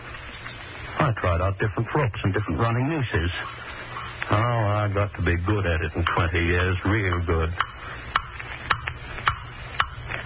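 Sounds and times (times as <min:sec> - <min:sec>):
low murky hum: 0:00.0 - 0:10.2
speech: 0:01.0 - 0:03.6, 0:04.3 - 0:07.7
clock ticking: 0:03.3 - 0:10.0.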